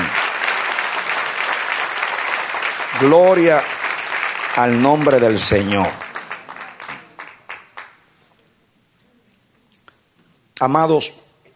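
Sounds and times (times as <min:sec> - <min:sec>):
church congregation applause during a Spanish-language service: 0:00.0 - 0:08.1
speech: 0:03.0 - 0:03.8, 0:04.6 - 0:06.0, 0:10.6 - 0:11.2.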